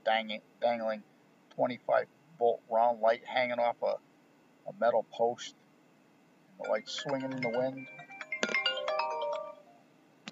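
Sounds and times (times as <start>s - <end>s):
speech: 0.0s - 4.1s, 4.7s - 5.6s, 6.6s - 8.1s
phone ringtone bright melodic phrase: 6.6s - 9.8s.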